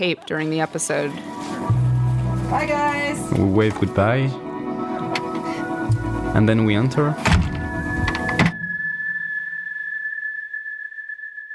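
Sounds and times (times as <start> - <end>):
speech: 0.0 - 1.8, 2.5 - 4.5, 6.3 - 7.4
busy noise: 0.0 - 11.5
door swinging shut with a solid thud: 7.2 - 8.6.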